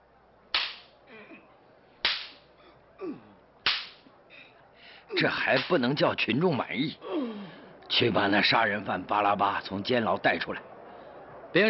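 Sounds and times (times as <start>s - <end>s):
whip lashes cracking: 0.5s - 0.9s, 2.0s - 2.4s, 3.6s - 4.0s, 5.6s - 5.8s
speech: 5.1s - 7.3s, 7.9s - 10.7s.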